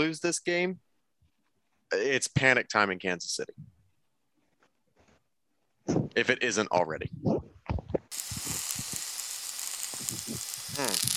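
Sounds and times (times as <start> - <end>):
speech: 0.0 - 0.9, 1.9 - 3.7, 5.9 - 8.3, 10.3 - 11.1
steak sizzling while cooking: 8.1 - 11.1.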